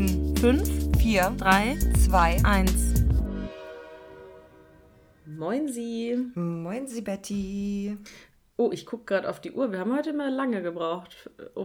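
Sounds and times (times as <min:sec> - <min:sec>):
speech: 0:00.4 - 0:02.9, 0:05.4 - 0:11.6
brief low rumble: 0:00.9 - 0:03.5
train horn sustained steady blare: 0:03.5 - 0:05.2.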